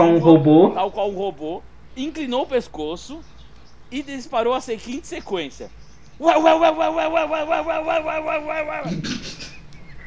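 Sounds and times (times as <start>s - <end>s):
speech: 0.0s - 9.4s
laughter: 4.0s - 10.0s
person imitating dog barking: 6.2s - 9.5s
short lower vocal sound: 6.2s - 9.7s.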